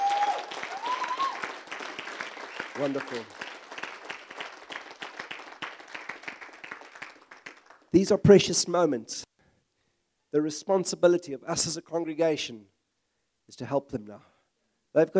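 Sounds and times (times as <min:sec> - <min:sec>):
church audience applause: 0:00.0 - 0:07.9
speech: 0:02.8 - 0:03.4, 0:07.9 - 0:09.3, 0:10.3 - 0:12.8, 0:13.5 - 0:14.3, 0:14.9 - 0:15.1.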